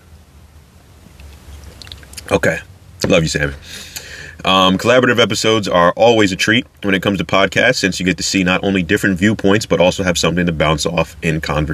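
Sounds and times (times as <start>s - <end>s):
low hum: 0.0s - 11.7s
person sipping coffee from a mug: 1.2s - 2.3s
speech: 2.2s - 11.7s.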